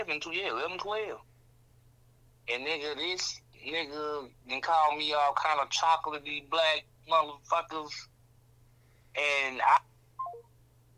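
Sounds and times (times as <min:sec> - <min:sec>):
faint steady low hum: 0:00.0 - 0:10.9
speech: 0:00.1 - 0:01.3, 0:02.5 - 0:08.1, 0:09.2 - 0:10.4
Boost Mobile phone electronic tones as a call hangs up: 0:10.2 - 0:10.5.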